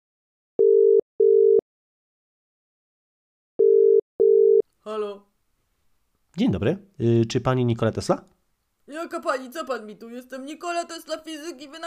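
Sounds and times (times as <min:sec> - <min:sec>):
lower steady telephone ringing tones: 0:00.6 - 0:01.6, 0:03.6 - 0:04.6
speech: 0:04.9 - 0:05.3, 0:06.4 - 0:11.8.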